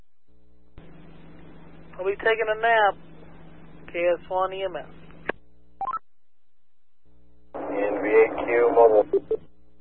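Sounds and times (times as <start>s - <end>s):
speech: 2.2s - 3.1s, 3.9s - 5.0s, 8.1s - 9.5s
touch-tone telephone dialing beeps: 5.8s - 6.0s.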